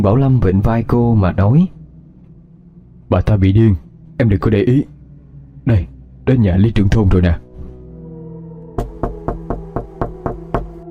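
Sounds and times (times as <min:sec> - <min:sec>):
speech: 0:00.0 - 0:01.8, 0:03.1 - 0:04.9, 0:05.6 - 0:07.4
knocking on a wooden door at a village headman's house: 0:08.8 - 0:10.8.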